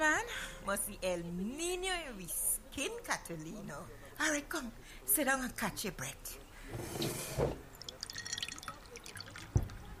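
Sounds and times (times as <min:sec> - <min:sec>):
speech: 0:00.7 - 0:07.6
lime water being poured into a glass: 0:07.7 - 0:09.9
lime water drips and trickles: 0:07.7 - 0:09.9.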